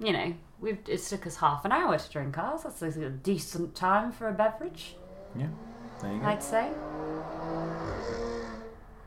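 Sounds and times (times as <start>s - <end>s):
speech: 0.0s - 7.7s
motorbikes roaring past outside: 4.6s - 9.0s.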